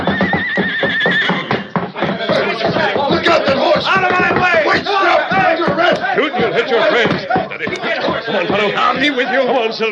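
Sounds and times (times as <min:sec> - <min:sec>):
horse neighing and whinnying: 0:00.0 - 0:01.7
hooves scuffling: 0:00.0 - 0:09.9
people shouting: 0:00.9 - 0:09.9
laughter: 0:01.0 - 0:09.9
speech: 0:08.4 - 0:09.9.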